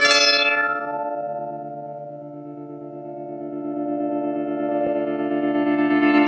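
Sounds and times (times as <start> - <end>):
pluck wave guitar loop on synth: 0.0 - 5.6.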